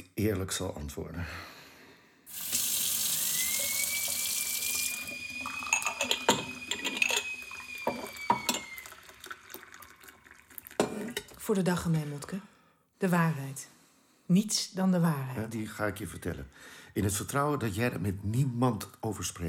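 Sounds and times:
speech: 0:00.2 - 0:01.6, 0:11.5 - 0:19.4
tea pouring into a cup: 0:02.3 - 0:12.3
china clinking and tapping: 0:05.4 - 0:09.0.

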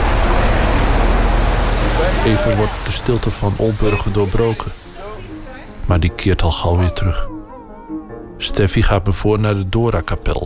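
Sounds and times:
truck driving past outside with deep engine rumble and road noise: 0:00.0 - 0:05.8
speech: 0:02.2 - 0:04.8, 0:05.9 - 0:07.4, 0:08.4 - 0:10.4.

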